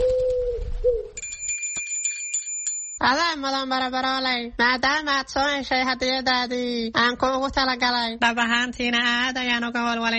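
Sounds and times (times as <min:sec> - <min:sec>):
low steady coo-like tone: 0:00.0 - 0:01.2
small bell tied to a pigeon's leg jingling: 0:01.2 - 0:03.6
speech: 0:03.0 - 0:10.1.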